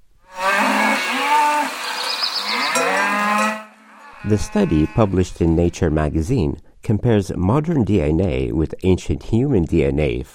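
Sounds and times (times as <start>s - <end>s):
cow mooing: 0.3s - 5.4s
speech: 4.2s - 10.3s.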